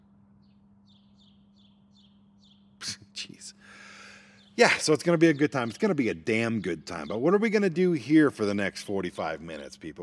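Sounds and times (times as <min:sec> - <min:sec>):
low constant hum: 0:00.0 - 0:10.0
birds chirping: 0:00.3 - 0:10.0
speech: 0:04.6 - 0:10.0.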